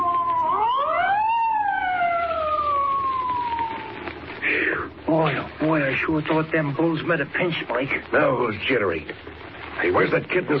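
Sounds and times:
police car siren passing: 0:00.0 - 0:04.3
street noise rumbling: 0:00.0 - 0:10.5
speech: 0:05.1 - 0:10.5.

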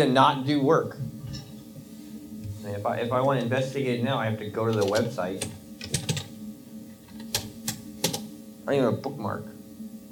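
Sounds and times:
speech: 0:00.0 - 0:01.0, 0:02.6 - 0:05.6, 0:08.7 - 0:09.5
faint steady low hum: 0:00.0 - 0:10.1
typing on a computer keyboard: 0:04.7 - 0:06.3, 0:07.1 - 0:08.2.

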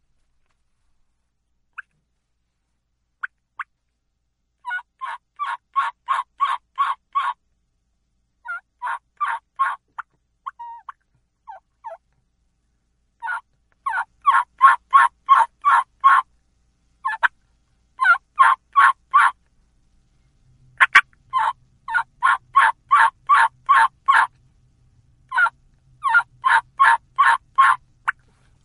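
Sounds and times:
hen turkey yelp made on a mouth call: 0:04.6 - 0:07.4, 0:08.4 - 0:09.8, 0:10.5 - 0:12.0, 0:13.2 - 0:16.3, 0:17.0 - 0:17.3, 0:18.0 - 0:19.4, 0:20.8 - 0:24.3, 0:25.3 - 0:28.2.

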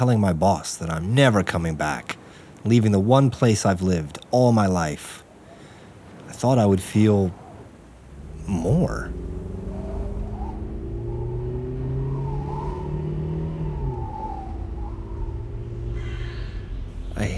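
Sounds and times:
speech: 0:00.0 - 0:05.2, 0:06.4 - 0:07.4, 0:08.5 - 0:09.3
low road rumble: 0:00.0 - 0:17.3
car driving fast along an empty desert road: 0:07.7 - 0:17.3.

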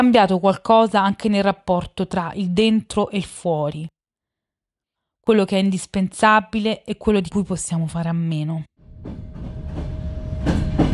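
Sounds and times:
speech: 0:00.0 - 0:04.0, 0:05.3 - 0:10.9
overcrowded passenger train rolling along rails: 0:08.8 - 0:10.9
passenger train wheel clacks: 0:09.1 - 0:10.9.

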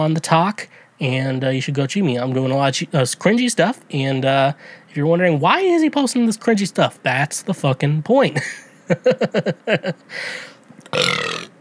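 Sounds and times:
speech: 0:00.0 - 0:11.6
breathy exhale: 0:04.6 - 0:04.9, 0:10.1 - 0:10.6
loud croaky stuttering burp: 0:10.8 - 0:11.6.

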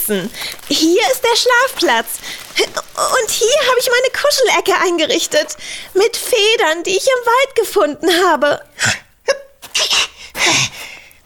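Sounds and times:
speech: 0:00.1 - 0:09.0
short gasping inhales: 0:02.2 - 0:02.7, 0:10.1 - 0:11.2
person sneezing: 0:08.8 - 0:11.2.

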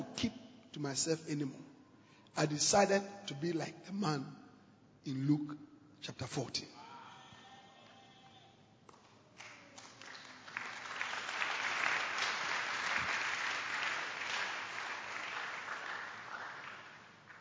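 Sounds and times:
speech: 0:00.2 - 0:01.7, 0:02.3 - 0:04.4, 0:05.0 - 0:06.8
passengers clapping on a London bus: 0:08.8 - 0:17.4.

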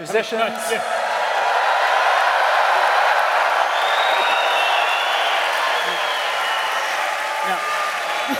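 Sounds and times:
speech: 0:00.0 - 0:01.0
large crowd roaring and cheering before a race: 0:00.0 - 0:08.3.

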